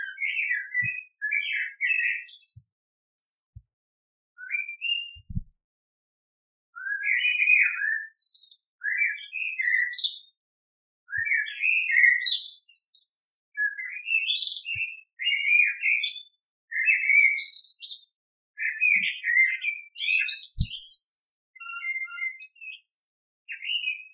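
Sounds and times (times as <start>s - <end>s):
Eurasian blackbird singing: 0.0s - 2.6s, 4.4s - 5.5s, 6.8s - 10.4s, 11.1s - 24.1s
low taps: 5.2s - 5.5s.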